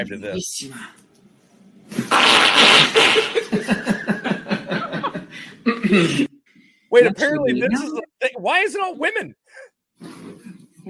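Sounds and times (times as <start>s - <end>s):
speech: 0.0s - 1.0s, 3.6s - 4.2s, 5.9s - 6.3s, 6.9s - 10.2s
loud buzzy fart noise: 1.9s - 3.6s
person chuckling and snickering: 2.8s - 6.3s, 7.2s - 8.2s.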